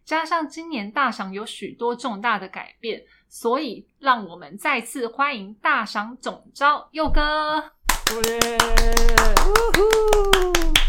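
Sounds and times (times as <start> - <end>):
speech: 0.1 - 10.8
brisk evenly spaced hand claps: 7.9 - 10.8
person holding a long wavering cheer: 8.0 - 10.8.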